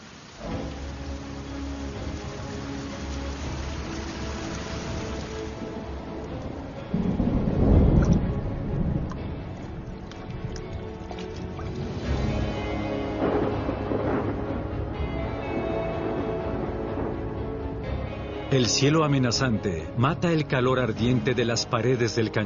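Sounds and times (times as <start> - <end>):
torrential monsoon rain over the Grand Canyon in Arizona: 0.0 - 22.4
deep rumble of thunder: 6.9 - 9.6, 13.0 - 17.7
speech: 18.6 - 22.4.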